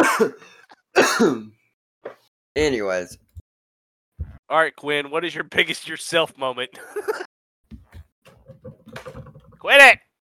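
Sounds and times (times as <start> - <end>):
person coughing and choking on seeds stuck in the throat: 0.0 - 1.5
speech: 0.2 - 3.2, 4.5 - 7.3, 9.0 - 10.0.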